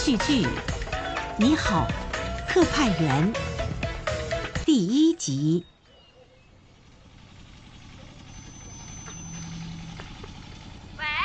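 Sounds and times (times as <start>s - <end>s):
speech: 0.0s - 0.7s, 1.4s - 3.5s, 4.7s - 5.7s
tractor engine idling: 0.0s - 11.2s.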